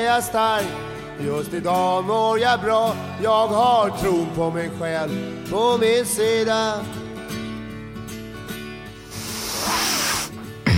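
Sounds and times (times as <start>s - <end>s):
speech: 0.0s - 7.0s
effervescent rehydration drink fizzing: 9.1s - 10.3s.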